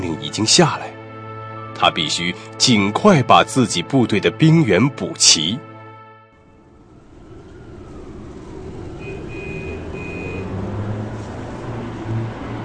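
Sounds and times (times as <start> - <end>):
speech: 0.1 - 0.9, 1.8 - 5.7
heavy trucks rumbling, driving into a camp: 6.4 - 12.6.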